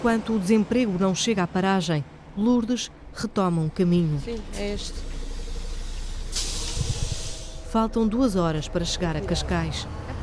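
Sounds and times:
speech: 0.0 - 5.1, 7.7 - 10.0
city bus engine idling in Barreiro: 0.0 - 10.2
city bus air brakes releasing in Barreiro: 4.9 - 7.8.

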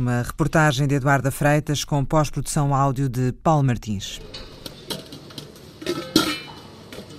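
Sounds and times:
speech: 0.0 - 4.5
metal pots and pans clattering in a kitchen: 4.2 - 7.1.

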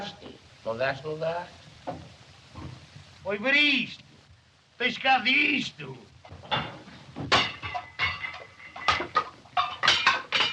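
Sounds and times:
speech: 0.6 - 2.1, 3.2 - 4.1, 4.8 - 6.7
shards and dishes rattling: 6.3 - 10.5
crockery smashing: 6.4 - 10.5.

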